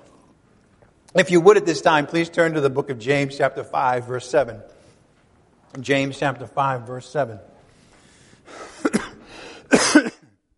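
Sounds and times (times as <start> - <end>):
speech: 1.1 - 4.8, 5.7 - 7.5
person coughing: 8.5 - 10.4.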